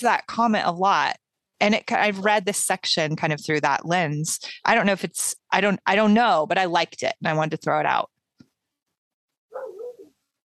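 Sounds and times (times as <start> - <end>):
speech: 0.0 - 8.1
dog barking: 9.5 - 10.1.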